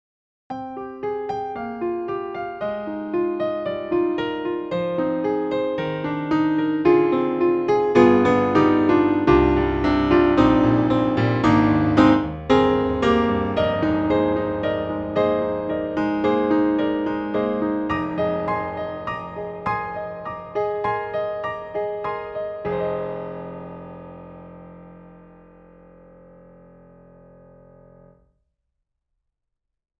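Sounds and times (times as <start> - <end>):
Italian grand piano: 0.5 - 28.2.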